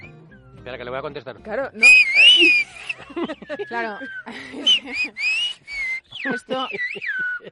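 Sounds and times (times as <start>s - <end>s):
speech: 0.6s - 5.4s, 6.2s - 7.5s
person whistling a greeting: 1.8s - 7.5s
laughter: 2.0s - 7.5s.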